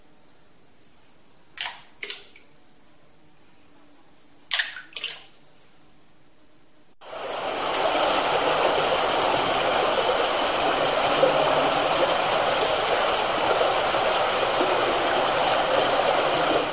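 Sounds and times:
dripping splashes: 0:01.5 - 0:02.6, 0:04.5 - 0:05.5, 0:07.0 - 0:16.7
underground mountain river roaring through a cave: 0:07.0 - 0:16.7.

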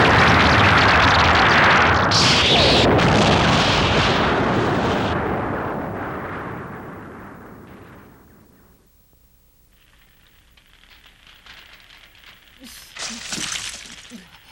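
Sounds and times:
explosion in an animated film: 0:00.0 - 0:08.9
crackling explosion debris: 0:00.0 - 0:14.5.

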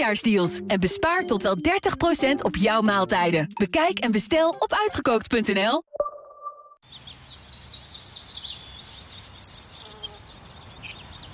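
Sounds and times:
speech: 0:00.0 - 0:06.0
birds whistling and chirping: 0:07.0 - 0:11.3.

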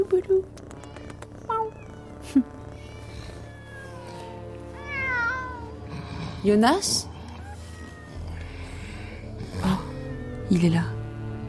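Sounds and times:
speech: 0:00.0 - 0:00.7, 0:02.3 - 0:02.6, 0:06.4 - 0:07.1, 0:10.5 - 0:11.0
low constant hum: 0:00.0 - 0:11.4
crowd of cats meowing: 0:01.0 - 0:06.1, 0:07.0 - 0:10.5.

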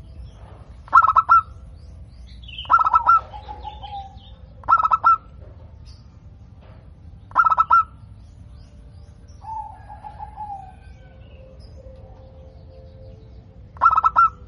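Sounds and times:
Zebra dove song with stuttering coo notes: 0:00.9 - 0:01.6, 0:02.6 - 0:05.4, 0:07.3 - 0:07.9, 0:09.4 - 0:11.2, 0:13.7 - 0:14.4.

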